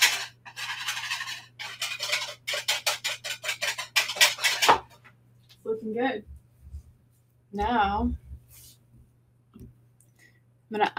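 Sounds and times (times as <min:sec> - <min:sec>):
whisking blueberry pancake batter with oil in a bowl: 0:00.0 - 0:05.0
speech: 0:05.9 - 0:06.4, 0:07.5 - 0:08.2, 0:10.7 - 0:10.9.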